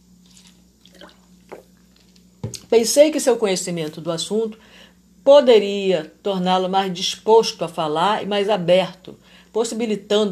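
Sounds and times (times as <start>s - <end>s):
person sipping water: 0.2s - 2.3s
speech: 2.7s - 10.2s.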